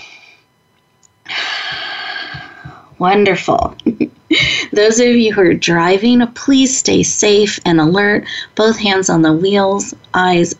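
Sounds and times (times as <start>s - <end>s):
deep breath drawn in during a guided breathing exercise: 1.3s - 2.9s
speech: 3.0s - 10.5s.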